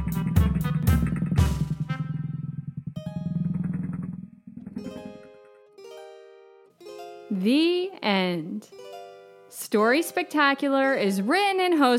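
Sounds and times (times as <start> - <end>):
small motor scooter engine revving and buzzing: 0.0 - 5.3
speech: 7.3 - 8.8, 9.6 - 11.9.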